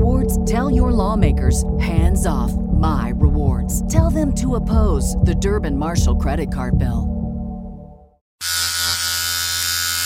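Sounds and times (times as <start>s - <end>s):
speech: 0.5s - 7.2s
electric razor shaving a face: 8.4s - 10.0s.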